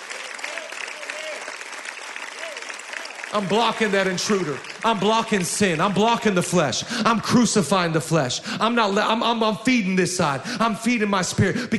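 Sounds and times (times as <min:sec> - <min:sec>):
crowd applauding: 0:00.0 - 0:06.8
speech: 0:03.3 - 0:11.7.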